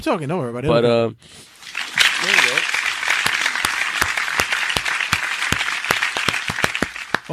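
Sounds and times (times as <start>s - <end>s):
speech: 0.0s - 1.5s
applause: 1.6s - 7.3s.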